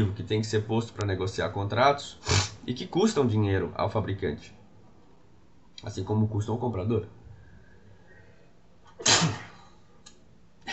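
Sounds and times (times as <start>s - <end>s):
speech: 0.0s - 4.6s, 5.8s - 7.2s
person sneezing: 2.2s - 2.6s, 9.0s - 9.6s.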